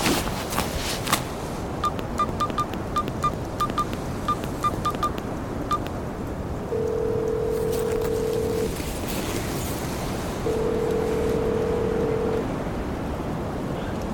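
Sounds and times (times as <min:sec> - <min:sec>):
boat engine rumble: 0:00.0 - 0:14.1
constant wind: 0:00.0 - 0:14.1
satellite phone dialing with long steady electronic ringing tones: 0:01.8 - 0:05.9, 0:06.7 - 0:08.7, 0:10.5 - 0:12.5.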